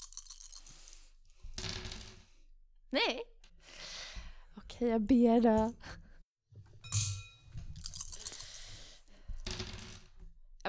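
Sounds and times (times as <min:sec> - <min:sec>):
dice clattering across a hard tabletop: 0:00.0 - 0:02.4, 0:07.6 - 0:10.2
speech: 0:02.9 - 0:03.3, 0:04.8 - 0:05.9.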